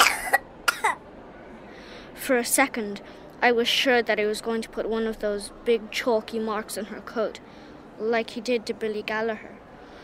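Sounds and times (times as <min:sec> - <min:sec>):
sick girl coughing harshly: 0:00.0 - 0:01.0
speech: 0:02.3 - 0:09.5.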